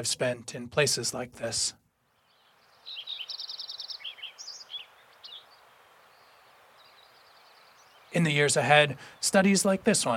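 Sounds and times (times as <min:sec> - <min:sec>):
speech: 0:00.0 - 0:01.8, 0:08.1 - 0:10.1
hiss: 0:00.0 - 0:10.1
Lincoln's sparrow singing: 0:02.1 - 0:10.1.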